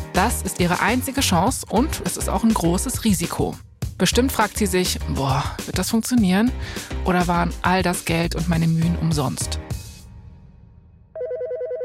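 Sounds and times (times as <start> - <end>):
speech: 0.2 - 9.7
phone electronic ringtone from an incoming call: 11.2 - 11.8.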